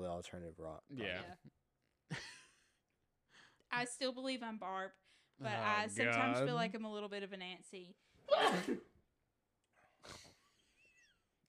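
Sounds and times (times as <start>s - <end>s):
speech: 0.0s - 2.3s, 3.7s - 8.9s, 10.0s - 10.4s
sneeze: 8.3s - 8.9s
sniff: 10.0s - 10.5s.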